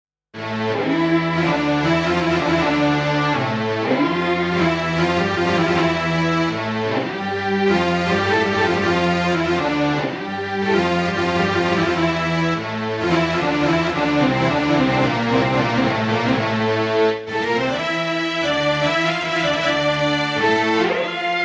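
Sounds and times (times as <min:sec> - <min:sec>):
orchestra: 0:00.4 - 0:21.4.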